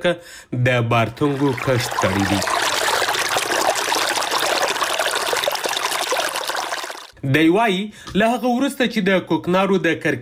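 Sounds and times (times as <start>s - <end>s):
speech: 0.0s - 2.8s, 7.2s - 10.2s
water flowing while irrigating farmland: 1.0s - 7.2s.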